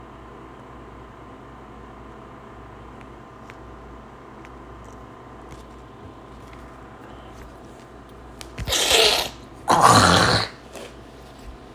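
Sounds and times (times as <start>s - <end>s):
person clearing throat and hawking up phlegm: 8.6s - 11.0s.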